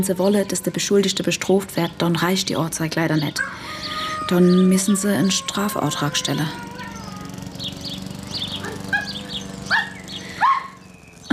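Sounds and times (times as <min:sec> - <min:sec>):
speech: 0:00.0 - 0:06.7
lively dog barking in short sharp yelps: 0:08.6 - 0:10.8.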